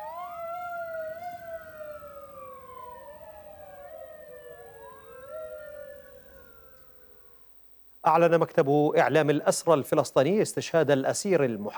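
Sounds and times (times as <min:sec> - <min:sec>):
ambulance sirens wailing in Jabalia camp, northern Gaza Strip: 0:00.0 - 0:07.5
speech: 0:08.0 - 0:11.7.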